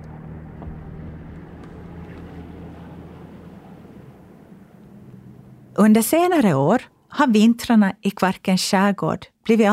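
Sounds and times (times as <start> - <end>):
low motor engine drone: 0.0 - 6.1
speech: 5.8 - 9.7.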